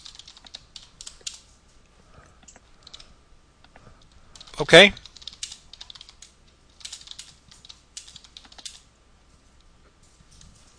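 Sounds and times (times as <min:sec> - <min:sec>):
computer keyboard typing: 0:00.0 - 0:01.4, 0:02.4 - 0:03.1, 0:03.7 - 0:08.9
speech: 0:04.6 - 0:05.0.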